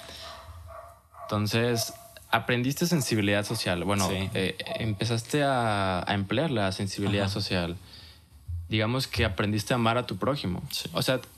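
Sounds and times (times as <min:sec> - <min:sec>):
dogs in a neighbourhood barking: 0:00.0 - 0:02.2, 0:03.4 - 0:05.2
steady hum: 0:00.0 - 0:11.3
speech: 0:01.3 - 0:08.0, 0:08.7 - 0:11.3.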